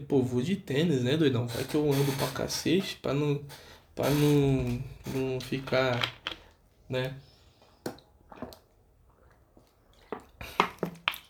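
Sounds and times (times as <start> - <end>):
speech: 0.0 - 6.3, 6.9 - 7.3
person gulping and swallowing water: 7.8 - 11.2.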